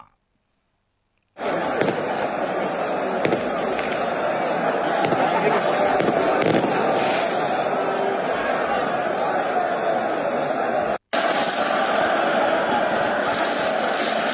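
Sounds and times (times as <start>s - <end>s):
dense continuous roar of crowd noise: 1.4s - 14.3s
laughter: 1.4s - 14.3s
firecrackers set off by celebrating football fans: 5.0s - 7.3s, 11.1s - 12.1s, 12.9s - 14.3s.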